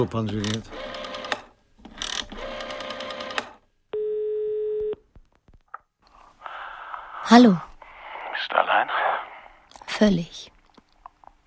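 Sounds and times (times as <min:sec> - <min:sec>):
speech: 0:00.0 - 0:00.9, 0:07.3 - 0:07.7, 0:10.0 - 0:10.5
telephone dialing clicks: 0:00.4 - 0:03.5
telephone dial tone: 0:00.7 - 0:01.4, 0:02.1 - 0:03.4, 0:04.0 - 0:05.0.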